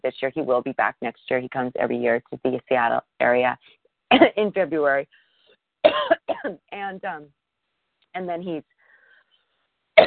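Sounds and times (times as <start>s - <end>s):
speech: 0.0s - 5.2s, 5.8s - 7.4s, 8.2s - 8.7s
person coughing raspy bursts: 5.9s - 6.6s.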